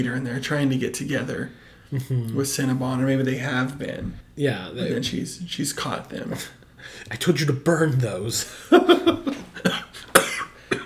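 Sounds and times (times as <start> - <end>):
speech: 0.0 - 9.8
laughter: 8.4 - 10.1
person coughing: 9.6 - 10.8.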